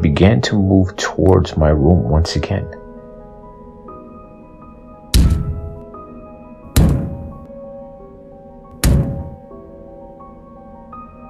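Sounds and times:
speech: 0.2 - 2.8
heavy booming knocks from a kitchen: 6.8 - 7.5, 8.8 - 9.5.

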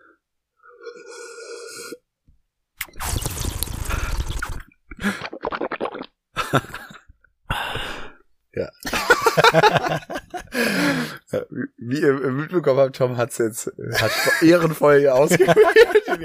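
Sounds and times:
person sipping and swallowing water: 2.8 - 6.2
speech: 6.5 - 6.8, 9.4 - 16.2
laughter: 8.8 - 10.6, 14.0 - 14.6, 15.2 - 16.2.

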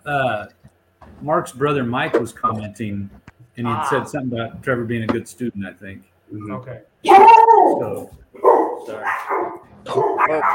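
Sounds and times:
speech: 0.0 - 0.6, 1.2 - 10.5
agitated dog barking: 8.4 - 10.5.

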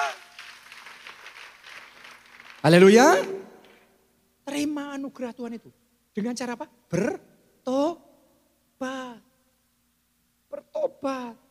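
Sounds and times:
church audience applauding during a sermon: 0.0 - 3.8
speech: 2.6 - 3.4, 4.5 - 8.0, 8.8 - 9.2, 11.0 - 11.4.

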